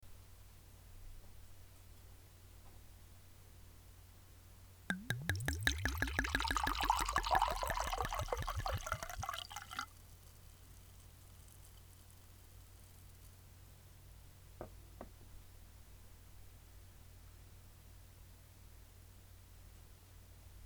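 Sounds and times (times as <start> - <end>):
wine pouring: 4.9 - 9.9.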